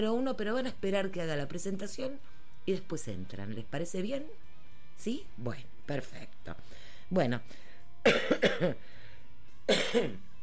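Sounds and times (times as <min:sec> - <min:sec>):
speech: 0:00.0 - 0:09.0, 0:09.7 - 0:10.4
person coughing in a radio studio: 0:08.0 - 0:08.8, 0:09.7 - 0:10.4.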